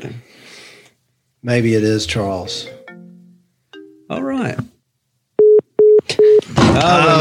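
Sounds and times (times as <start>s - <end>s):
speech: 1.4s - 2.8s, 4.1s - 4.7s
incoming call alert tones on a phone line: 5.4s - 6.4s.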